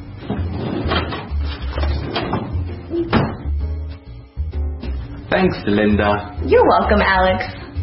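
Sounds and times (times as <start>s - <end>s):
wooden desk drawer sliding open and shut: 0.2s - 3.5s
speech: 5.4s - 7.6s.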